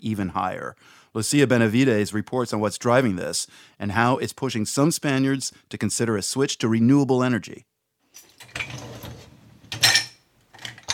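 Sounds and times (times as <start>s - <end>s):
speech: 0.0s - 7.7s
dishes and cutlery clattering as a dishwasher is loaded: 8.2s - 10.9s.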